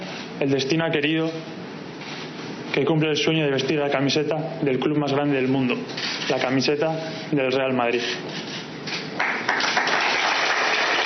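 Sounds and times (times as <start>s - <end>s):
speech: 0.4s - 1.6s, 2.8s - 8.6s
crowd applauding a footballer presented as a new player: 9.2s - 11.0s.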